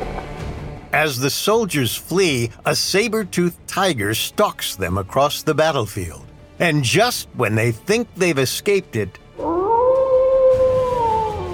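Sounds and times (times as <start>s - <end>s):
speech: 0.9s - 9.5s
dire wolf howling: 9.4s - 11.5s.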